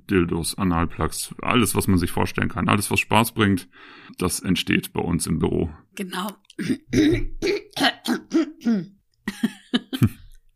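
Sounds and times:
speech: 0:00.1 - 0:10.2
throat clearing into a microphone: 0:06.6 - 0:08.9
laughter: 0:09.3 - 0:10.3.

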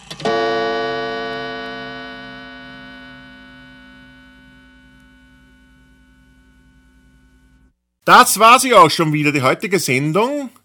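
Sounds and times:
gong strike as a transition sting: 0:00.3 - 0:05.5
speech: 0:08.1 - 0:10.6.

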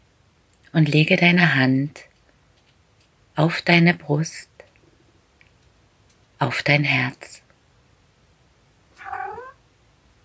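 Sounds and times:
speech: 0:00.7 - 0:02.1, 0:03.4 - 0:04.5, 0:06.4 - 0:07.4
pet cat meowing: 0:09.0 - 0:09.6.

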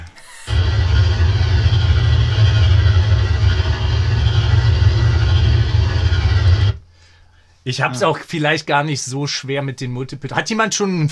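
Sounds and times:
podracer engine roaring: 0:00.5 - 0:06.8
speech: 0:07.7 - 0:11.1.

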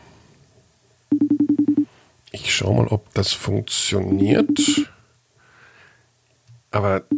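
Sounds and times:
FaceTime video call ringing tone: 0:01.1 - 0:01.9, 0:04.1 - 0:05.0, 0:07.0 - 0:07.1
speech: 0:02.4 - 0:04.9, 0:06.8 - 0:07.1.

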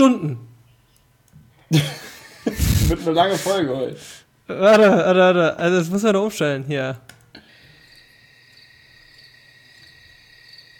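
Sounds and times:
speech: 0:00.0 - 0:00.5, 0:01.7 - 0:07.1
laughter: 0:01.7 - 0:03.8
crickets chirping at night: 0:07.4 - 0:10.7.

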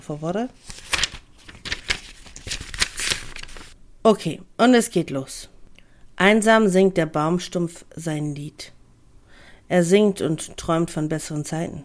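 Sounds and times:
speech: 0:00.0 - 0:00.9, 0:04.1 - 0:05.5, 0:06.2 - 0:08.8, 0:09.7 - 0:11.8
paper pages being leafed through: 0:00.0 - 0:03.8.

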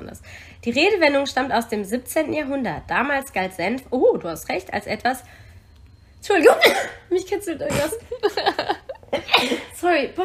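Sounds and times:
speech: 0:00.6 - 0:05.4, 0:06.2 - 0:10.2
person sneezing: 0:06.5 - 0:07.0
person laughing: 0:07.7 - 0:09.7.

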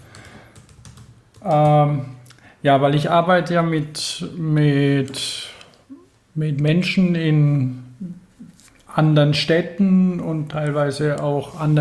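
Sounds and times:
typing on a computer keyboard: 0:00.0 - 0:01.8
speech: 0:01.4 - 0:05.3, 0:06.4 - 0:08.2, 0:09.0 - 0:11.7.

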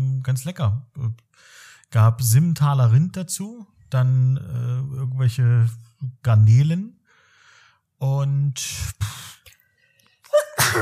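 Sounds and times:
speech: 0:00.2 - 0:07.0, 0:08.0 - 0:09.2
person sneezing: 0:10.3 - 0:10.8.

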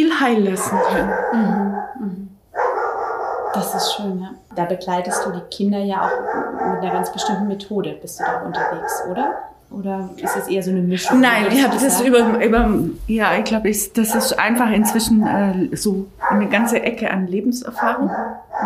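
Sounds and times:
speech: 0:00.0 - 0:02.4, 0:03.6 - 0:18.6
dog barking: 0:00.4 - 0:04.4, 0:05.0 - 0:12.7, 0:14.0 - 0:15.4, 0:16.1 - 0:16.9, 0:17.8 - 0:18.6.

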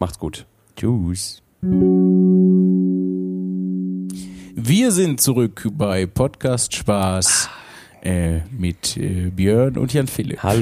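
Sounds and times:
speech: 0:00.0 - 0:02.3, 0:04.6 - 0:10.6
single gong strike with deep resonant hum: 0:01.7 - 0:05.1.

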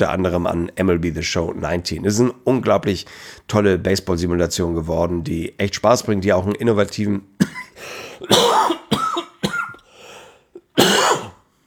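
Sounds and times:
speech: 0:00.0 - 0:08.7
throat-clearing: 0:07.4 - 0:09.8, 0:10.6 - 0:11.4
harsh coughing: 0:07.4 - 0:11.5.

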